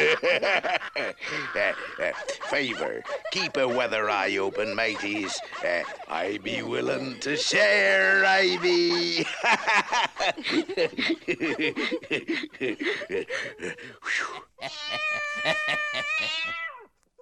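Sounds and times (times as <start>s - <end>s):
gruff voice chuckling and muttering: 0.0s - 16.5s
speech: 0.1s - 16.7s
cat giving a long loud wavering meow: 14.6s - 16.9s.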